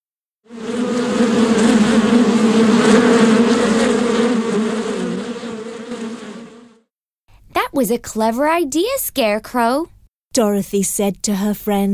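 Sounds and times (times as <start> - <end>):
dense swarm of bees buzzing: 0.5 - 6.8
speech: 2.0 - 4.0, 7.8 - 11.9.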